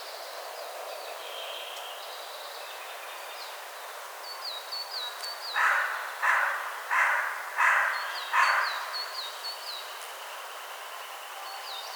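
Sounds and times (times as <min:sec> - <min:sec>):
Carrion crow giving harsh caws: 0:05.6 - 0:08.9.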